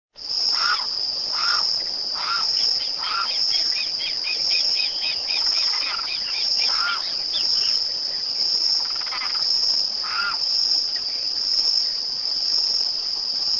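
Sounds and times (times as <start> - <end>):
Aramus guarauna limpkin calling: 0.6 - 1.6, 2.2 - 7.8, 10.0 - 10.4.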